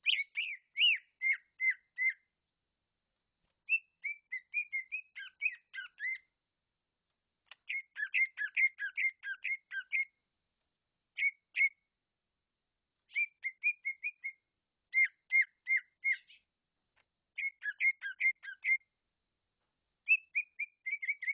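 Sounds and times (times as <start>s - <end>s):
leafbird singing: 0.0s - 2.2s, 3.6s - 6.3s, 7.5s - 10.1s, 11.2s - 11.8s, 13.1s - 16.5s, 17.4s - 18.8s, 20.1s - 21.3s.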